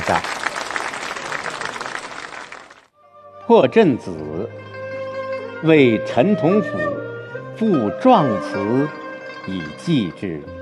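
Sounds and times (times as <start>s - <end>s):
audience applause in a classroom: 0.0s - 2.9s
speech: 0.1s - 0.4s, 3.5s - 4.8s, 5.6s - 7.0s, 7.6s - 10.6s.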